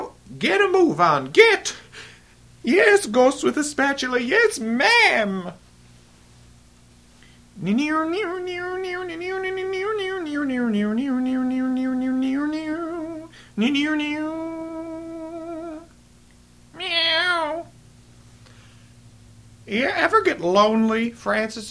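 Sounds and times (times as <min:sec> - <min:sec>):
speech: 0:00.4 - 0:01.8, 0:02.6 - 0:05.6, 0:07.6 - 0:12.6, 0:13.6 - 0:14.4, 0:19.7 - 0:21.6
cat meowing in drawn-out wavering yowls: 0:16.8 - 0:17.7.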